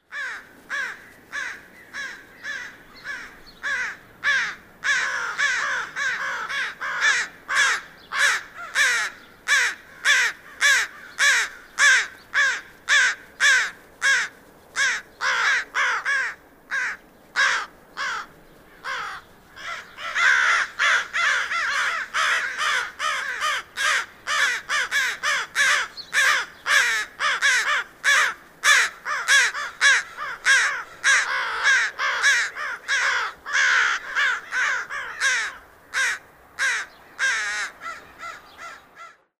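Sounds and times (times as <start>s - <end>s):
American crow calling: 0.0s - 39.3s.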